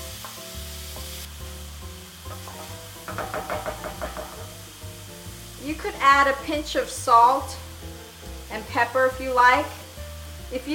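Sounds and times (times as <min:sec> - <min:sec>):
onion sautéing in a pan: 0:00.0 - 0:10.7
stirring clatters and knocks: 0:02.3 - 0:04.5
speech: 0:03.2 - 0:03.6, 0:05.7 - 0:07.6, 0:08.5 - 0:09.8, 0:10.5 - 0:10.7.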